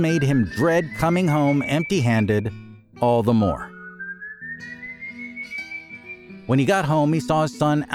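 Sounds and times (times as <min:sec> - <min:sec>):
person whistling a steady slowly rising tone: 0:00.0 - 0:02.8, 0:03.6 - 0:06.4
speech: 0:00.0 - 0:03.7, 0:06.5 - 0:07.9.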